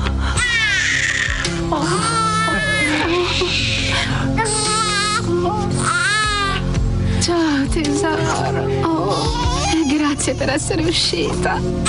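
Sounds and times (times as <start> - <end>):
newborn baby girl crying: 0.4 - 6.8, 9.0 - 10.5
speech: 7.7 - 9.5, 10.2 - 11.8.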